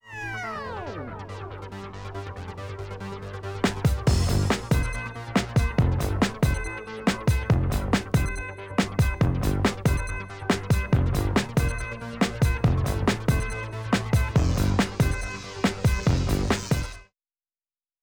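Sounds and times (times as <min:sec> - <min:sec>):
instrumental music: 0:03.7 - 0:17.0.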